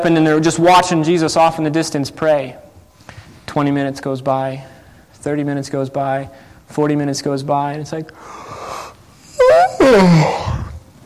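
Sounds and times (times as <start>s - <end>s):
speech: 0.0s - 2.7s, 3.6s - 8.5s, 9.4s - 10.4s
drawn-out vocal yawn from someone listening to a talk: 8.4s - 10.9s.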